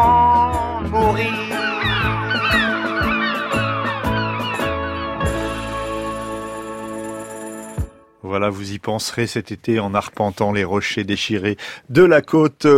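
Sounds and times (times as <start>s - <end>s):
seagulls squawking: 1.1s - 6.3s
sustained tone: 1.6s - 8.0s
speech: 8.4s - 12.7s.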